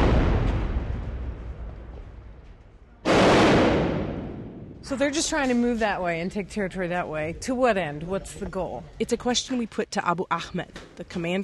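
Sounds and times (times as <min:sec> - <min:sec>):
artillery shell exploding on an urban front line: 0:00.0 - 0:01.7, 0:03.0 - 0:04.9
speech: 0:04.9 - 0:11.4.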